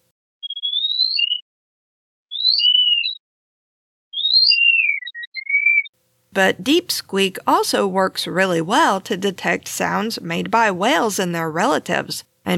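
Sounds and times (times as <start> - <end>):
male mouse ultrasonic song slowed down to human hearing range: 0.4 - 1.4, 2.3 - 3.2, 4.1 - 5.9
speech: 6.4 - 12.5.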